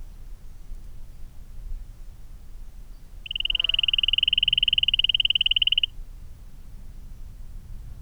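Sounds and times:
Leptodactylus oreomantis frog: 0:03.2 - 0:05.9.

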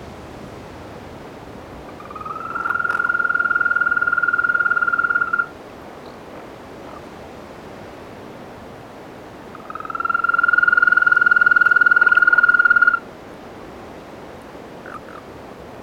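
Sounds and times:
African green toad Bufotes boulengeri trilling: 0:02.0 - 0:05.5, 0:09.6 - 0:13.0.

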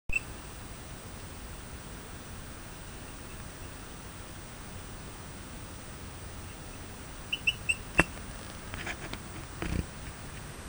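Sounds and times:
Eleutherodactylus cystignathoides calling: 0:00.1 - 0:10.5.

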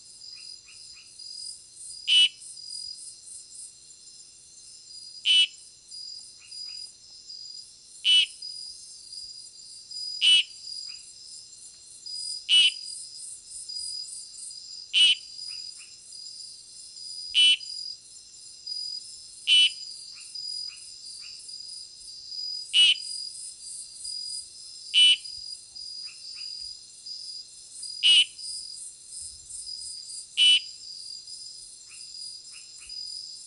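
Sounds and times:
Oreophryne philosylleptoris: 0:02.1 - 0:02.4, 0:05.2 - 0:05.6, 0:08.0 - 0:08.5, 0:10.2 - 0:11.1, 0:12.5 - 0:12.9, 0:14.9 - 0:16.0, 0:17.3 - 0:17.8, 0:19.5 - 0:21.4, 0:22.7 - 0:23.2, 0:24.9 - 0:25.4, 0:28.0 - 0:28.4, 0:30.4 - 0:30.8, 0:31.9 - 0:33.1.

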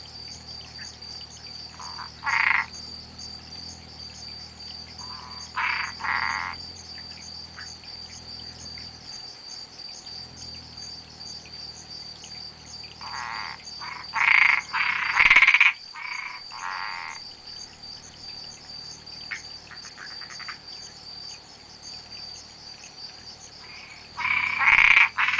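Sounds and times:
spotted tree frog Boana albopunctata giving rasping pulsed calls: 0:01.7 - 0:02.9, 0:04.9 - 0:08.2, 0:12.9 - 0:17.7, 0:19.2 - 0:20.9, 0:23.6 - 0:25.3.

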